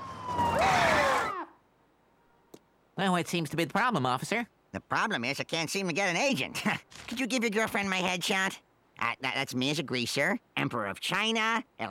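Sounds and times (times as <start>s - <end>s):
police car siren wailing: 0.0s - 1.6s
steady noise: 0.0s - 11.8s
speech: 3.0s - 11.8s.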